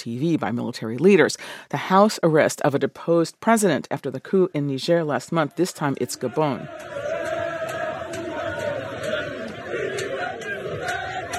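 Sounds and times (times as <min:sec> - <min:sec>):
speech: 0:00.0 - 0:07.1
crowd celebrating in the streets after news of a military coup: 0:06.1 - 0:11.3.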